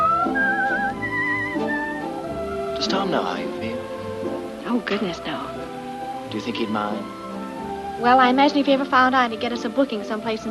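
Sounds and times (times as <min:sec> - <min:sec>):
person whistling a slow melody: 0:00.0 - 0:04.1
soft steady orchestral accompaniment: 0:00.0 - 0:10.4
speech: 0:02.8 - 0:03.7, 0:04.7 - 0:05.5, 0:06.3 - 0:07.2, 0:08.0 - 0:10.4.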